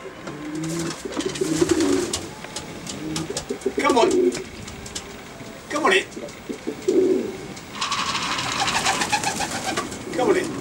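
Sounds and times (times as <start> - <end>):
pigeons cooing with low throaty burrs: 0.0 - 10.5
brighter fluttering, chirpy bird noise: 0.5 - 5.3, 7.8 - 10.5
speech: 3.8 - 4.4.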